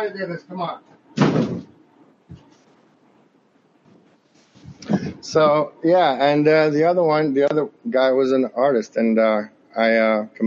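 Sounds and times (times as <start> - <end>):
speech: 0.0 - 1.7, 5.2 - 10.4
faint rustling: 0.9 - 3.2, 3.8 - 5.6
door shutting with a solid thud: 1.2 - 2.4.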